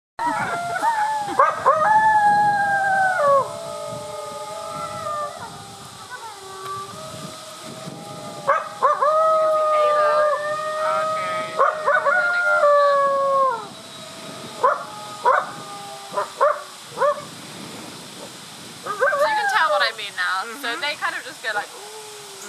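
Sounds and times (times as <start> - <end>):
howling: 0.2 - 17.3, 18.8 - 19.9, 21.6 - 22.4.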